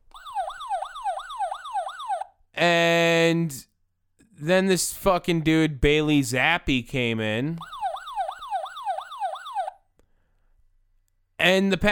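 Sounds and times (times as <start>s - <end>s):
siren alarm wailing: 0.0s - 2.4s, 7.6s - 9.8s
speech: 4.4s - 7.7s, 11.4s - 11.9s.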